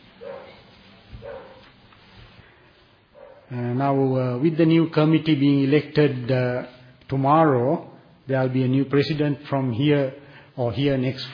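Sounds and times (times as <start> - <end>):
dog barking and whining outside: 0.2 - 0.6, 1.2 - 1.6
speech: 3.5 - 11.3.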